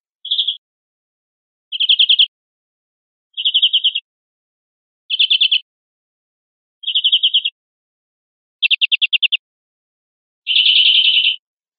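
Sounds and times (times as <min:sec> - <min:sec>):
greenfinch song with short bell-like trills: 0:00.1 - 0:00.6, 0:01.7 - 0:02.4, 0:03.3 - 0:04.1, 0:05.1 - 0:05.7, 0:06.8 - 0:07.6, 0:08.6 - 0:09.4, 0:10.5 - 0:11.4.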